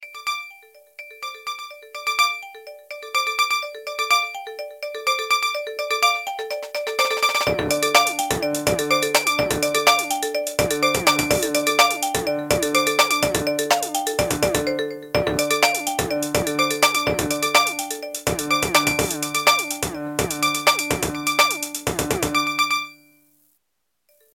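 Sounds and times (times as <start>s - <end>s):
futuristic Nokia phone tone: 1.2s - 23.1s.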